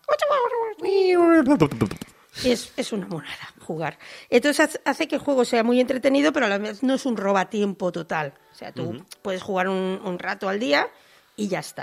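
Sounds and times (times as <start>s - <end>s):
speech: 0.1s - 11.8s
voice imitating a cute robot falling in a mobile game: 8.8s - 9.0s.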